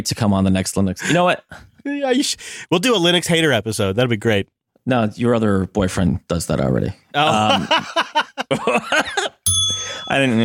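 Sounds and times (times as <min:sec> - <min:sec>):
speech: 0:00.0 - 0:10.4
laughter-like vocal sounds: 0:07.2 - 0:09.4
bright metallic bell ding: 0:09.5 - 0:10.4.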